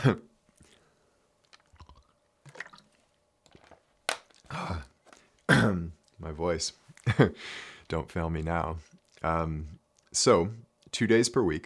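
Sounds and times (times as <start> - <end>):
speech: 0.0 - 0.3, 6.2 - 11.6
person sipping water with soft slurping: 0.6 - 5.3
wet mouth clicks: 1.4 - 2.9.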